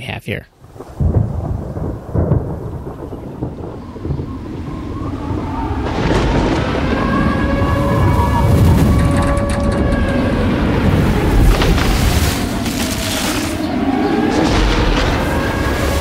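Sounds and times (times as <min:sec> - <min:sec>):
speech: 0:00.1 - 0:00.8
loud sustained roar of wind and rain: 0:00.5 - 0:15.9
deep booming thunder from movie trailer sound effects: 0:00.6 - 0:15.9
eerie rising whistling tones: 0:03.2 - 0:15.9.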